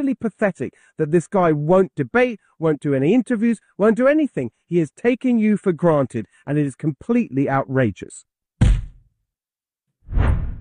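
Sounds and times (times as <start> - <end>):
speech: 0.0 - 8.3
swoosh sound effect: 10.1 - 10.5.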